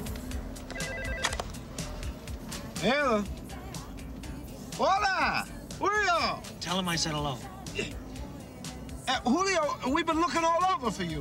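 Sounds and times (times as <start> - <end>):
low rumbling engine hum: 0.0 - 11.1
car phone ringing with electronic trill: 0.6 - 2.1
speech: 2.8 - 3.4, 4.8 - 8.0, 9.1 - 11.1.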